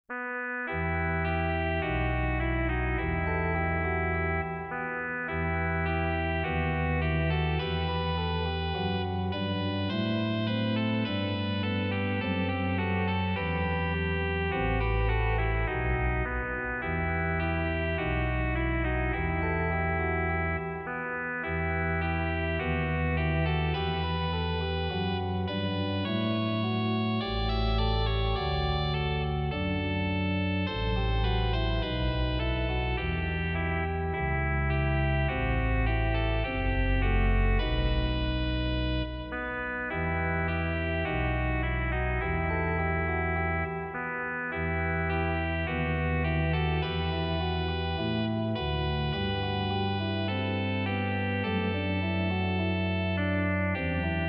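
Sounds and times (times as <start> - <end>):
organ playing a short trumpet tune in E minor on a trumpet stop: 0.1 - 54.2.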